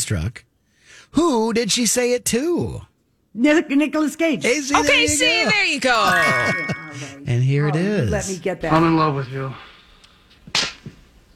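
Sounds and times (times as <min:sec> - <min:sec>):
speech: 0:00.0 - 0:09.7
sharp loud slap to the face: 0:10.5 - 0:11.0.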